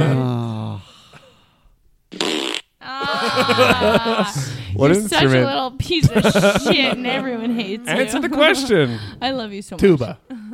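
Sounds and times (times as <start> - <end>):
voiced sighing: 0.0 - 1.6, 3.0 - 4.9
loud raspy fart: 2.1 - 2.7
laughter-like vocal sounds: 2.8 - 4.8, 6.0 - 7.1
speech: 3.4 - 10.4.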